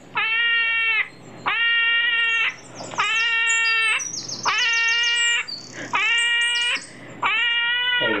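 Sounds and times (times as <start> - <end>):
faint bird chirps: 0.0 - 8.1
hedgehog making loud screaming calls: 0.1 - 8.1.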